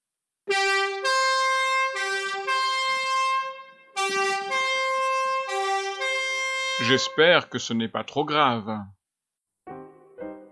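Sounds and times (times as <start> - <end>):
fire truck's loud two-tone horn: 0.5 - 7.5
speech: 6.8 - 9.0.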